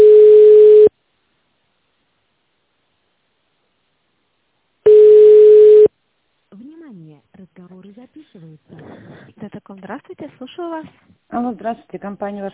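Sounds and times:
telephone line tone while call is transferred to operator: 0:00.0 - 0:00.9, 0:04.9 - 0:05.9
speech: 0:10.6 - 0:12.5.

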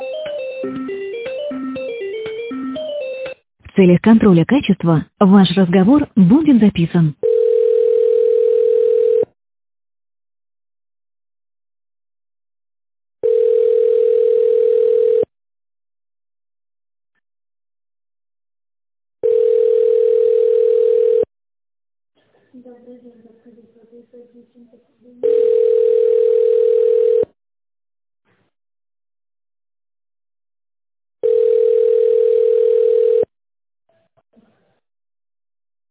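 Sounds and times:
telephone line ringing tone while a call is transferred to a secretary: 0:00.0 - 0:03.4, 0:07.2 - 0:09.4, 0:13.2 - 0:15.3, 0:19.2 - 0:21.3, 0:25.2 - 0:27.4, 0:31.2 - 0:33.3
speech: 0:00.6 - 0:01.0, 0:03.8 - 0:07.2.

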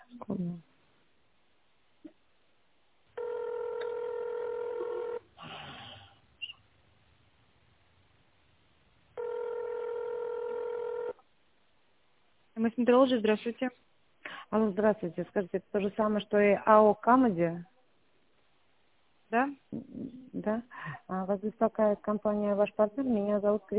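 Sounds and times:
speech: 0:00.2 - 0:00.7, 0:12.7 - 0:13.9, 0:14.5 - 0:17.7, 0:19.3 - 0:23.7
telephone keypad dialing tones during a call to a company line: 0:03.2 - 0:05.2, 0:09.2 - 0:11.2.

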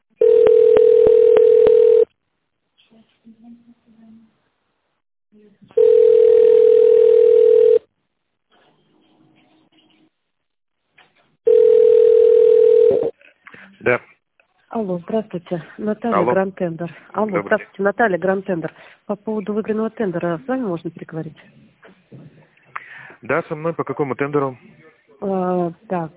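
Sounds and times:
telephone ringback tone while placing a call to a company: 0:00.2 - 0:02.1, 0:05.8 - 0:07.9, 0:11.5 - 0:13.1
speech: 0:05.3 - 0:05.9, 0:13.9 - 0:14.1, 0:14.8 - 0:21.6, 0:23.2 - 0:26.1.

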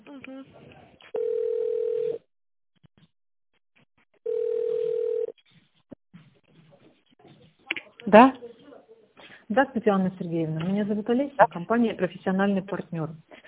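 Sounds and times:
speech: 0:00.1 - 0:01.2, 0:08.1 - 0:08.4, 0:09.6 - 0:13.4
telephone ringback tone while a call is transferred: 0:01.2 - 0:02.2, 0:04.3 - 0:05.3.

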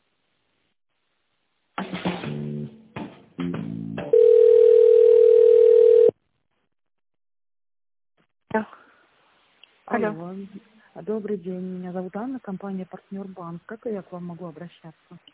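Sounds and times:
telephone ringing tone while a call is connected to a bank: 0:04.1 - 0:06.2
speech: 0:08.6 - 0:08.8, 0:10.0 - 0:15.3.

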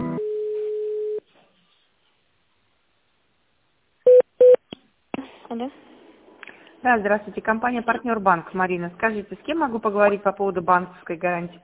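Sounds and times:
steady mid-pitched telephone tone: 0:00.2 - 0:01.2
two short, loud telephone beeps: 0:04.1 - 0:04.6
speech: 0:05.6 - 0:05.9, 0:06.9 - 0:11.6.

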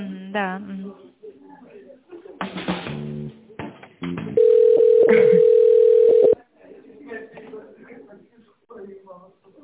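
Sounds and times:
telephone line tone during a call transfer: 0:04.4 - 0:06.4.

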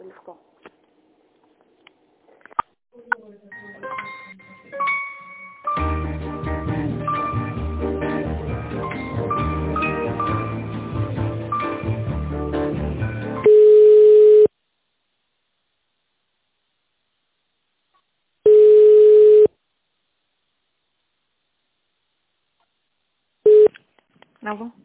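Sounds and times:
telephone ringback tone while an office call is transferred: 0:13.5 - 0:14.5, 0:18.5 - 0:19.5, 0:23.5 - 0:23.7.

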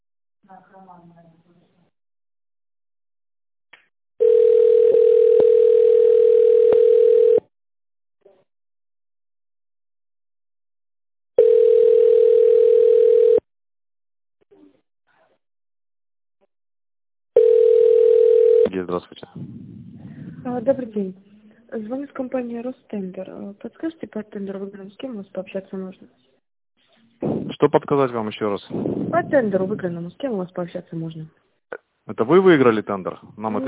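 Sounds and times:
speech: 0:00.5 - 0:01.8, 0:20.6 - 0:26.3, 0:27.6 - 0:33.6
company's automated phone greeting asking callers to dial an extension: 0:04.2 - 0:07.4, 0:11.4 - 0:13.4, 0:17.4 - 0:18.7
telephone line signal after automated phone greeting: 0:04.2 - 0:07.5, 0:11.4 - 0:13.4, 0:17.4 - 0:18.7.

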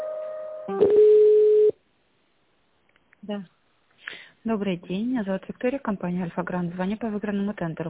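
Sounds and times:
electronic telephone tones while an office call is transferred: 0:00.7 - 0:01.8
speech: 0:03.3 - 0:03.6, 0:04.5 - 0:07.8.

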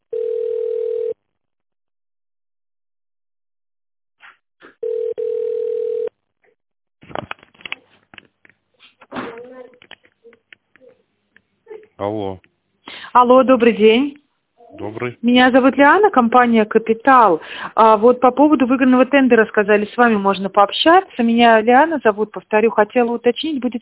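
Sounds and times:
telephone ringing tone while a call is being transferred: 0:00.1 - 0:01.2, 0:04.8 - 0:06.2
speech: 0:12.0 - 0:12.5, 0:13.2 - 0:14.2, 0:14.8 - 0:23.8.

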